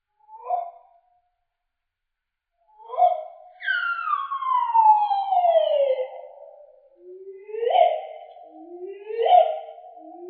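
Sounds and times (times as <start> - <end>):
solitary bird song: 2.8 - 10.2.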